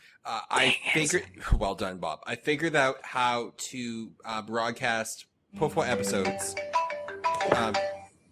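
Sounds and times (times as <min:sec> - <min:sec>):
speech: 0:00.2 - 0:06.6, 0:07.4 - 0:07.9
cell phone ringing with a short electronic melodic tone: 0:05.7 - 0:08.1.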